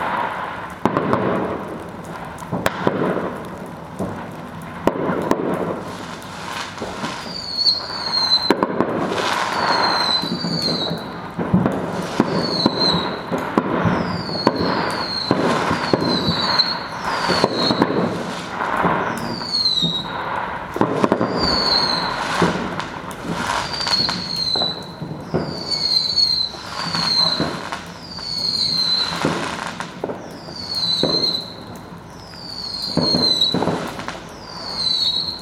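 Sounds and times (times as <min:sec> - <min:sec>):
fireworks sharp bangs and crackles: 0:00.0 - 0:35.4
rising firework whistles: 0:07.2 - 0:08.6, 0:09.4 - 0:11.2, 0:12.2 - 0:18.2, 0:19.0 - 0:20.2, 0:21.1 - 0:22.8, 0:23.4 - 0:29.4, 0:30.1 - 0:35.4.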